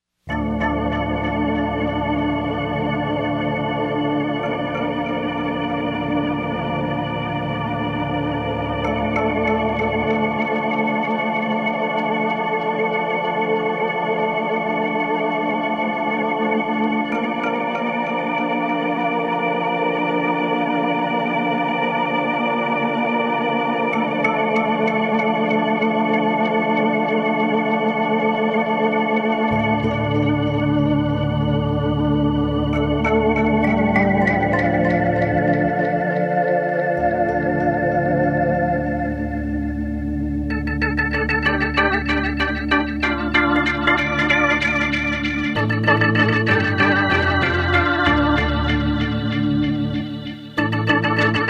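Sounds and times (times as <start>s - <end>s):
organ build up: 0.3s - 51.4s.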